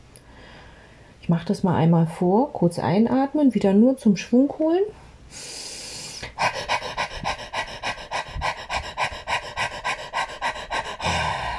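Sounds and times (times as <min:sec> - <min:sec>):
speech: 0:01.3 - 0:05.6
person panting with rapid shallow breaths as a labor breathing technique: 0:05.4 - 0:11.5.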